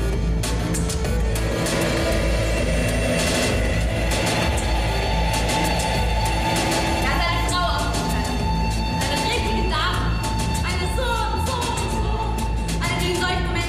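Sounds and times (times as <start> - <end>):
subway train ambience with loud continuous low rumble: 0.2 - 13.5
faint tonal whine: 1.2 - 9.0.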